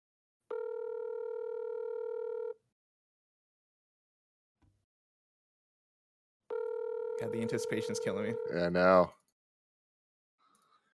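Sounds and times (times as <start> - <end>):
phone line electronic ringing tone for an outgoing call: 0.5 - 2.6, 6.5 - 9.0
speech: 7.2 - 9.2.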